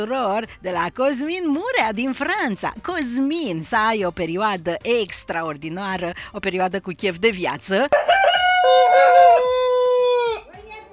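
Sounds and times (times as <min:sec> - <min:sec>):
speech: 0:00.0 - 0:09.2
flock of many hens clucking: 0:07.9 - 0:10.5
rooster crowing: 0:07.9 - 0:10.5.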